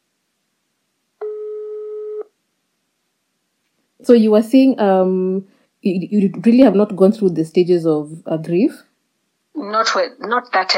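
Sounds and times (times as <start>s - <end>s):
steady telephone tone as a phone call connects: 1.2s - 2.3s
speech: 4.0s - 8.9s, 9.6s - 10.7s.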